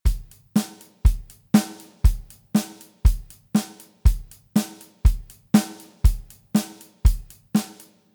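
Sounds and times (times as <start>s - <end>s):
straight drum groove: 0.0s - 8.1s.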